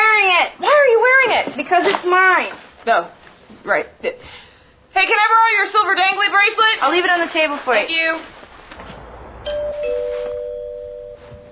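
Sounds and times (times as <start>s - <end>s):
quiet hiss: 0.0s - 11.5s
speech: 1.7s - 4.4s, 5.0s - 8.4s
two-tone doorbell chiming indoors: 9.5s - 11.5s.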